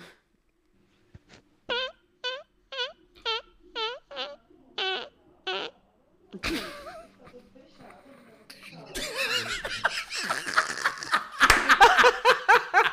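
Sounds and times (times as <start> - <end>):
high-pitched whistling fart squeaks: 1.7 - 5.8
speech: 6.4 - 6.8
laughter: 6.4 - 7.2, 9.0 - 12.9.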